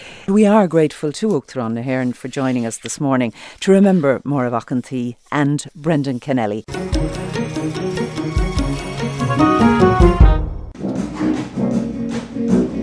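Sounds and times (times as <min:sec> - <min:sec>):
speech: 0:00.3 - 0:07.2
brass band playing an upbeat pop song: 0:06.7 - 0:12.8.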